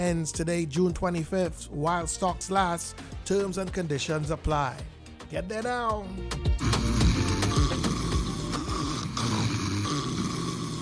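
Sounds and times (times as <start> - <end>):
speech: 0.0 - 6.6
person snoring while asleep: 6.6 - 10.8.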